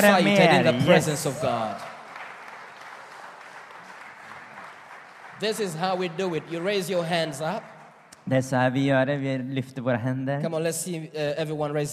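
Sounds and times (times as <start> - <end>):
speech: 0.0 - 1.9, 5.4 - 11.9
room full of people clapping: 0.0 - 8.7.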